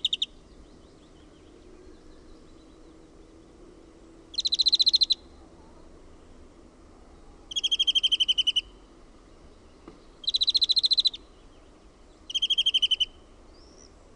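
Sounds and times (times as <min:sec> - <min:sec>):
European greenfinch song of rapid rattling trills: 0:00.0 - 0:00.3, 0:04.3 - 0:05.2, 0:07.5 - 0:08.7, 0:10.2 - 0:11.2, 0:12.3 - 0:13.9.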